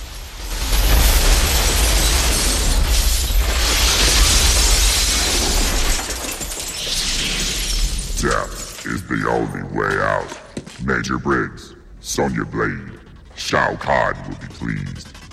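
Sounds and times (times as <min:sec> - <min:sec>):
debris clattering: 0:00.0 - 0:09.0
glass shattering: 0:00.0 - 0:09.0
speech: 0:09.8 - 0:15.2.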